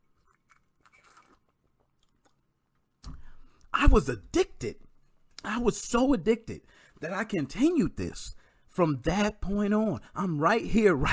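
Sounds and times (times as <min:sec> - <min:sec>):
person sipping a drink: 0:00.0 - 0:02.5
speech: 0:03.8 - 0:04.8, 0:05.4 - 0:11.1.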